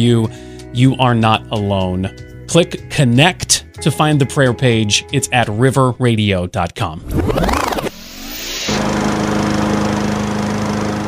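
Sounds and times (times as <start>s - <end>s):
speech: 0.0s - 7.6s
lawn mower engine running: 8.7s - 11.0s.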